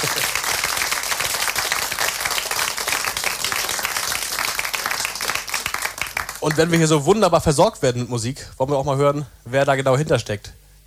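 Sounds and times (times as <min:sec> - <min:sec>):
speech: 0:00.0 - 0:00.4, 0:06.4 - 0:10.6
audience applause at a radio awards ceremony: 0:00.0 - 0:07.0.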